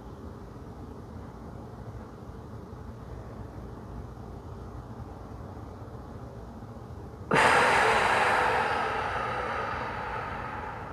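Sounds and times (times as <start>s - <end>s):
slow 4-7-8 breathing inhale close to the microphone: 7.3s - 10.9s.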